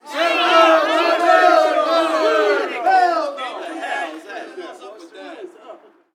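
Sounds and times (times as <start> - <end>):
street ball crowd booing: 0.0 - 6.1.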